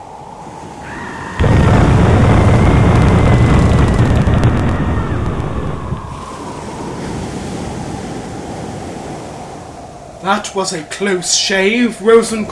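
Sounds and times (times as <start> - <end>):
howling wind: 0.0 - 12.5
stormy sea roaring as a boat is shipwrecked on a desolate shoreline: 0.0 - 12.5
crashing surf: 0.6 - 11.1
speech: 10.3 - 12.5.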